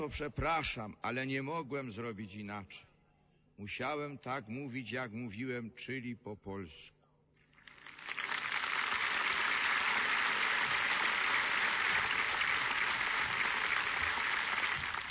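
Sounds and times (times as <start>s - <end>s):
speech: 0.0s - 2.9s, 3.6s - 7.0s
crowd applause: 7.6s - 15.0s.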